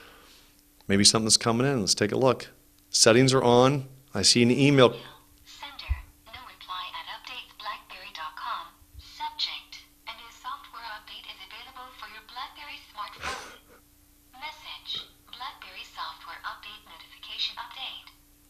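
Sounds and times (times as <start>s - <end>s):
faint steady hum: 0.0s - 18.4s
speech: 0.9s - 5.1s
text-to-speech app voice reading aloud from a phone speaker: 4.6s - 13.2s, 14.4s - 18.1s.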